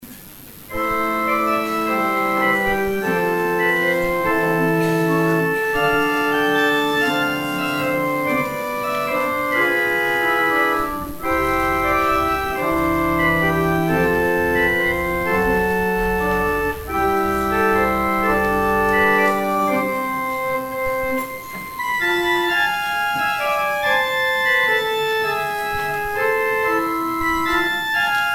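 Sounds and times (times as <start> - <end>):
organ interlude: 0.7 - 28.3.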